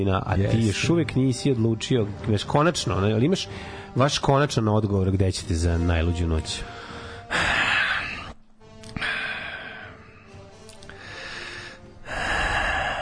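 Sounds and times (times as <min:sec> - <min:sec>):
speech: 0:00.0 - 0:06.9
heavy breathing into a microphone: 0:03.4 - 0:04.0, 0:06.6 - 0:12.9.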